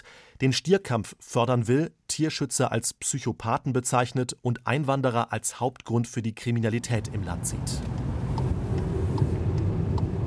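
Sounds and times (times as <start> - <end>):
speech: 0.4 - 8.1
car engine and road rumble driving on the road out of Málaga toward Almería: 6.8 - 10.2.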